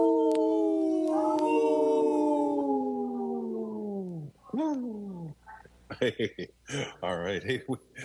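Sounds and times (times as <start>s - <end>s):
wolf howling: 0.0s - 5.5s
speech: 6.0s - 8.0s.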